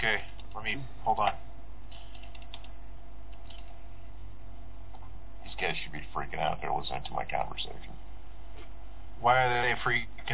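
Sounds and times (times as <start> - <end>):
speech: 0.0 - 1.5, 9.3 - 10.1
steady low hum: 0.0 - 10.3
typing on a computer keyboard at a PC: 2.1 - 3.7.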